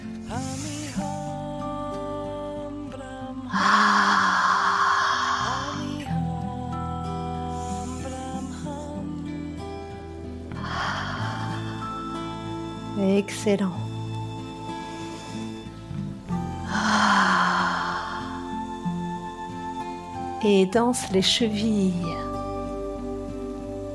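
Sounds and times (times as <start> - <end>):
breathing in and out during a stretching exercise: 0.0 - 1.3, 3.5 - 6.1, 7.5 - 8.7, 10.5 - 12.8, 14.6 - 19.3
steady music: 0.0 - 23.9
speech: 13.2 - 13.8, 20.4 - 22.3.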